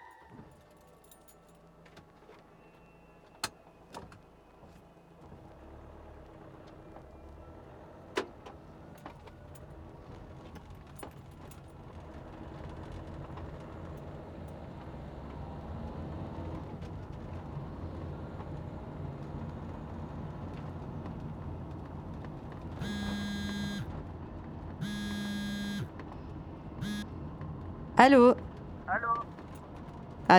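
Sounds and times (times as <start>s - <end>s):
car road and engine rumble heard from inside the cabin: 3.3s - 30.3s
loud warning beeps: 22.8s - 23.9s, 24.8s - 25.9s, 26.8s - 27.0s
sharp clicks: 22.8s - 23.9s, 24.8s - 25.9s, 26.8s - 27.0s
speech: 28.0s - 29.0s.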